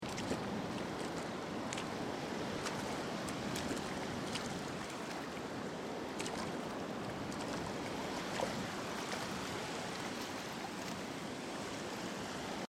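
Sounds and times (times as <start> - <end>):
footsteps in deep water: 0.0 - 11.2
sea at an ocean beach: 0.0 - 12.6.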